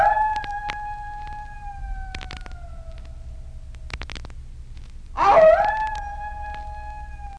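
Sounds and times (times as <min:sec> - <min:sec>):
wolf howling: 0:00.0 - 0:03.4, 0:05.2 - 0:07.3.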